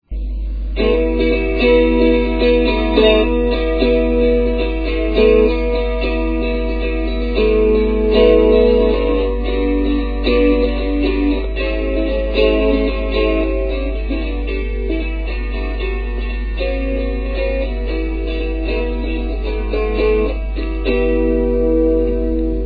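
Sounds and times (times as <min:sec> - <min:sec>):
10 string instrument playing chords: 0:00.1 - 0:22.6.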